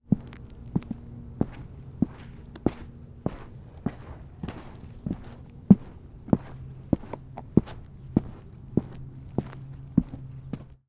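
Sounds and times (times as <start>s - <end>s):
foley footsteps walking on exterior boards: 0.1s - 10.7s.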